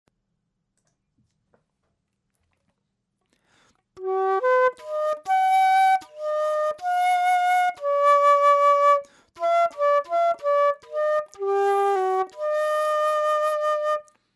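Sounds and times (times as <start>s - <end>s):
flute: 4.0s - 14.3s.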